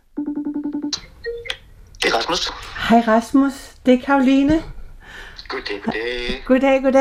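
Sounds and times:
rapidly pulsing electronic telephone ringing tone during outgoing call: 0.2 - 1.5
speech: 2.1 - 6.9.

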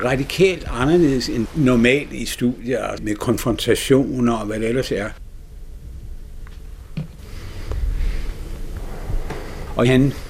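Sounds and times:
speech: 0.0 - 5.2, 9.8 - 10.2
man breathing slowly and deeply lying relaxed on his back in a studio: 7.2 - 10.2.

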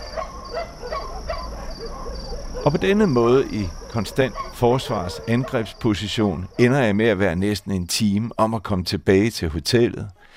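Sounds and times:
several dogs barking in sharp yaps: 0.0 - 6.7
speech: 2.6 - 10.2.

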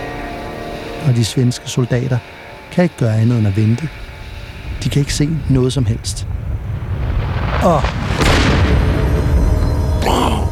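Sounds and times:
speech: 1.0 - 4.1, 4.8 - 6.4, 7.6 - 8.0, 10.0 - 10.3
cannonball exploding against a Swedish fortress wall: 6.3 - 9.9.

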